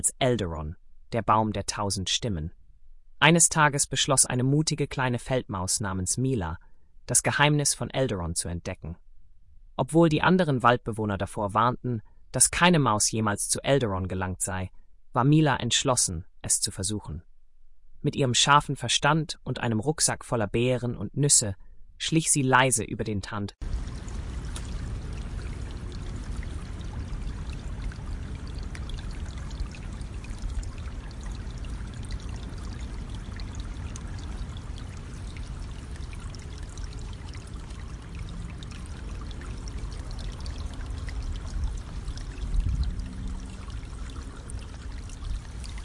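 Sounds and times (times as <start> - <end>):
speech: 0.0 - 2.6, 3.2 - 9.0, 9.8 - 17.3, 18.0 - 24.0
steady rushing river water: 23.6 - 45.8.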